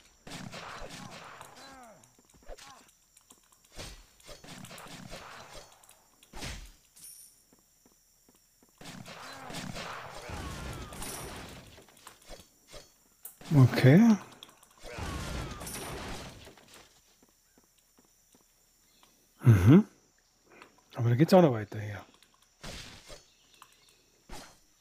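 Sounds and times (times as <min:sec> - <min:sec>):
gunfire from enemy probes in a video game: 0:00.2 - 0:01.9, 0:03.8 - 0:05.8, 0:08.8 - 0:11.9, 0:14.8 - 0:16.8
speech: 0:13.5 - 0:14.3, 0:21.2 - 0:21.9.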